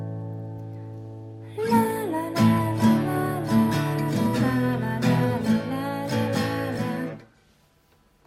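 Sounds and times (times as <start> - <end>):
person singing an A chord: 1.5 - 7.3.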